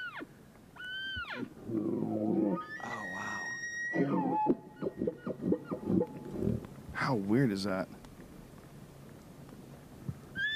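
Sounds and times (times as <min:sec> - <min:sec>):
high whistling elk bugles with sliding pitch: 0:00.0 - 0:06.7
speech: 0:01.4 - 0:03.0, 0:07.1 - 0:08.0.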